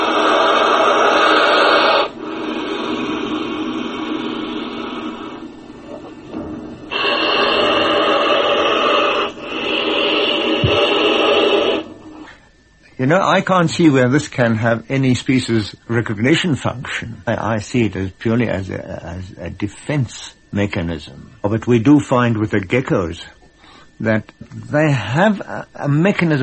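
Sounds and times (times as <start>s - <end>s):
crocodile blowing with long loud breathy hissing exhalations: 0.0s - 12.3s
speech: 13.0s - 23.4s, 24.0s - 26.4s.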